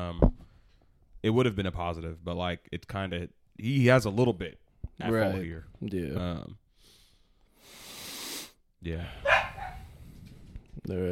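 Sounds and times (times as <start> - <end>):
speech: 1.2 - 6.6, 8.8 - 9.4, 10.8 - 11.1
breathy hiss: 6.8 - 8.6
dog barking: 9.2 - 9.9.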